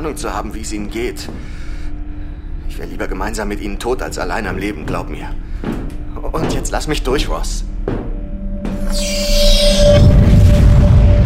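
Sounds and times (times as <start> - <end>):
speech: 0.0 - 1.6, 2.7 - 8.0
explosion blast: 9.0 - 11.2.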